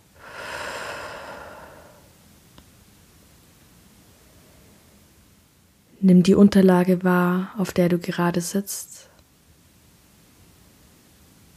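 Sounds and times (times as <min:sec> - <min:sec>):
deep breath in through the nose and out through the mouth during a guided meditation: 0:00.2 - 0:02.2
speech: 0:06.0 - 0:09.1.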